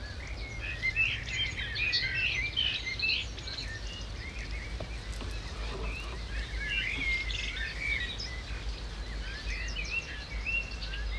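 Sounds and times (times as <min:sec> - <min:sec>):
morning chorus of starlings chattering and whistling: 0:00.2 - 0:11.1.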